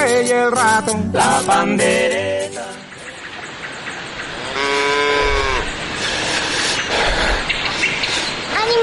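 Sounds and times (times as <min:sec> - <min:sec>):
steady hiss: 0:00.0 - 0:08.8
cow mooing: 0:04.5 - 0:05.7.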